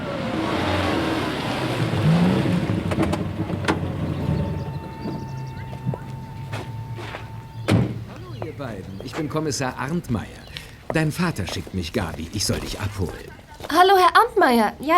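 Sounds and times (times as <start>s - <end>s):
grey Mercedes car pulling up and stopping: 0.0s - 10.7s
heavy thunk: 7.6s - 8.1s
speech: 8.6s - 14.9s.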